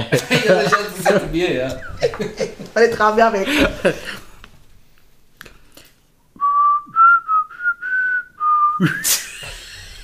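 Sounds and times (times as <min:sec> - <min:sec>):
speech: 0:00.0 - 0:04.2, 0:08.8 - 0:09.3
laughter: 0:00.0 - 0:04.4, 0:08.8 - 0:10.0
person whistling a short melody: 0:06.4 - 0:09.2.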